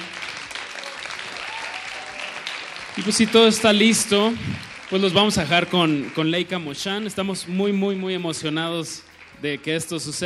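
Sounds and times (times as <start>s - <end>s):
audience applause: 0.0s - 7.6s
speech: 3.0s - 10.2s.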